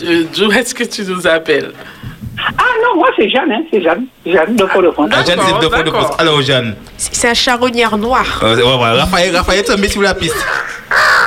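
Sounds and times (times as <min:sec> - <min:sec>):
speech: 0:00.0 - 0:11.0
crow cawing: 0:10.2 - 0:11.2.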